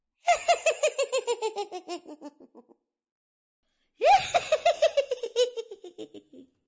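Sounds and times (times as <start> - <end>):
witch cackling: 0.3 - 2.7, 4.0 - 6.4.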